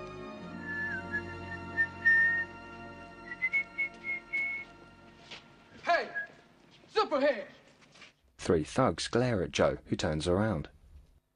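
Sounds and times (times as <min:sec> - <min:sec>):
person whistling a tune: 0:00.6 - 0:02.6, 0:03.2 - 0:04.7
speech: 0:07.1 - 0:07.6, 0:08.5 - 0:10.7.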